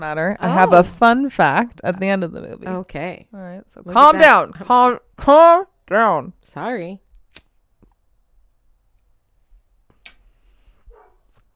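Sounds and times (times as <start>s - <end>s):
speech: 0.0s - 7.0s
dog barking: 10.9s - 11.3s.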